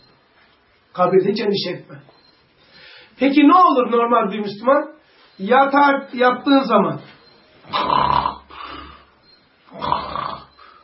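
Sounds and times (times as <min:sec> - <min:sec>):
speech: 0:01.0 - 0:02.2, 0:03.2 - 0:08.0
loud snoring: 0:07.7 - 0:09.1, 0:09.7 - 0:10.8.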